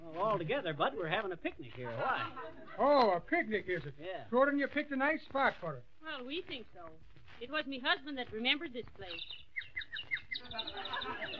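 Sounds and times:
faint low murmur: 0.0 - 11.3
speech: 0.2 - 11.3
laughter: 1.7 - 3.2, 10.4 - 11.3
sparrow chirping: 7.9 - 11.3.

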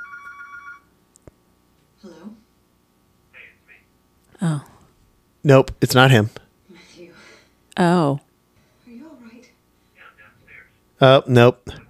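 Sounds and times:
telephone ringing with a rapid trilling electronic tone: 0.0 - 1.0
brief voice: 3.3 - 3.9, 10.0 - 10.8, 11.6 - 11.8
speech: 5.4 - 6.4, 7.8 - 8.2, 11.0 - 11.8.

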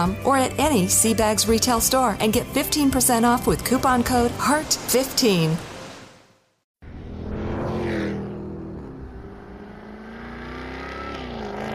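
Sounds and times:
speech: 0.0 - 5.7
Jaguar F-Type R 575-horsepower supercharged V8 engine revving: 6.8 - 11.7.

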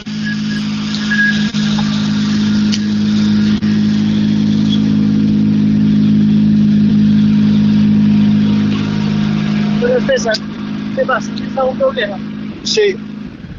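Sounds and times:
Citroën C3 N5 rally car engine revving: 0.0 - 13.5
speech: 10.2 - 10.4, 11.0 - 13.0.

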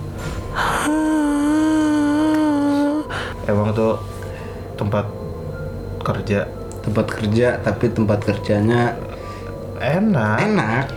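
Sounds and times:
brief breathy gasp: 0.3 - 3.4
voice imitating a woman crying with a high wail: 0.7 - 3.2
speech: 3.5 - 4.2, 4.8 - 5.2, 6.1 - 9.1, 9.8 - 10.9.

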